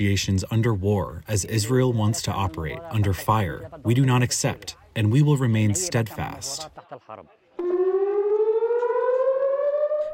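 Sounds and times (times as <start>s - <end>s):
speech: 0.0s - 7.4s
air raid siren blaring during a missile barrage in Israel: 7.6s - 10.1s.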